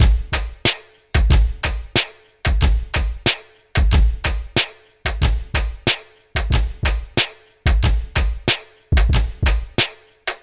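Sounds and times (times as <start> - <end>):
hip hop drumkit break: 0.0 - 10.4.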